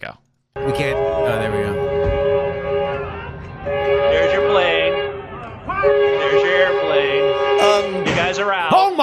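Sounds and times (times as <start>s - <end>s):
speech: 0.0s - 1.8s, 8.2s - 9.0s
train horn blaring: 0.6s - 8.7s.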